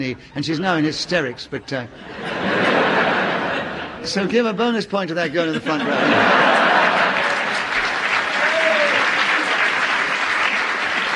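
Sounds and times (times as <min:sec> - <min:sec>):
speech: 0:00.0 - 0:03.0, 0:04.0 - 0:06.7
laughter: 0:00.4 - 0:11.1
sizeable audience applauding: 0:06.0 - 0:11.1.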